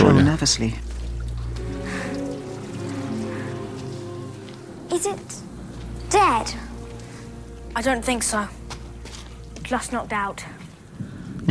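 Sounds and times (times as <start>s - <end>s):
water spraying and splashing from a broken pipe by washroom sinks: 0.0s - 11.2s
speech: 0.1s - 0.9s, 6.1s - 6.7s, 7.8s - 8.6s, 9.7s - 11.4s.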